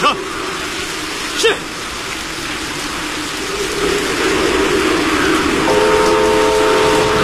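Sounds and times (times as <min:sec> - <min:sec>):
heavy rain hissing: 0:00.0 - 0:07.2
train rumbling on a test run over a repaired railway section: 0:00.0 - 0:07.2
tonal horn-like train blast: 0:05.7 - 0:07.2.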